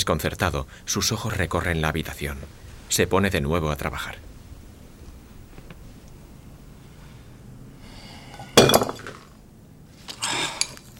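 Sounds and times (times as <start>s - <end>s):
speech: 0.0s - 4.3s
glass clinking and rattling: 8.6s - 9.3s
wine glass knocked over and shattering: 8.6s - 9.3s.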